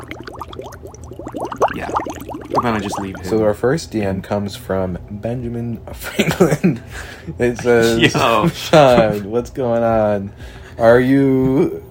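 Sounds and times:
voice imitating water bubbling: 0:00.0 - 0:03.4
speech: 0:01.8 - 0:11.8.

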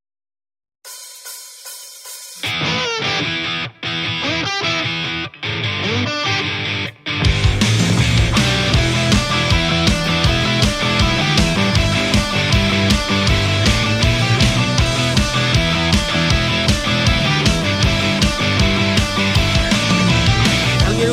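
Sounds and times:
pounding drums: 0:00.9 - 0:02.6, 0:07.3 - 0:21.1
loud rock song with sung vocals: 0:00.9 - 0:21.1
dense guitars: 0:02.4 - 0:21.1.

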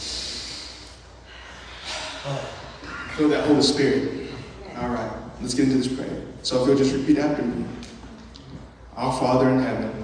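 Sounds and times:
group of people taking a deep breath during a prayer gathering: 0:00.0 - 0:03.1
speech: 0:02.2 - 0:04.2, 0:04.8 - 0:07.8, 0:09.0 - 0:10.0.

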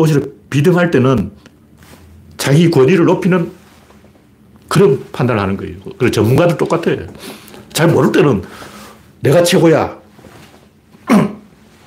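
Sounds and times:
speech: 0:00.0 - 0:01.5, 0:02.4 - 0:03.6, 0:04.7 - 0:10.0
throat clearing: 0:11.0 - 0:11.6.

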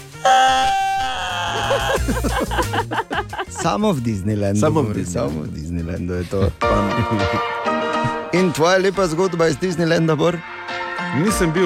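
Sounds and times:
large man screaming in a high pitch: 0:00.3 - 0:02.0
excited talking: 0:00.3 - 0:03.8
laughter-like voices: 0:00.7 - 0:03.7, 0:06.3 - 0:07.4
speech: 0:02.0 - 0:07.6, 0:08.3 - 0:11.6.

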